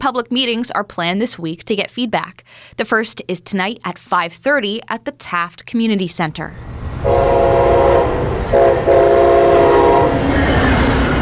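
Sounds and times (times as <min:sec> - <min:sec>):
speech: 0:00.0 - 0:09.0
passing train rumbling: 0:06.5 - 0:11.2
high-speed train horn blasts: 0:07.0 - 0:10.3.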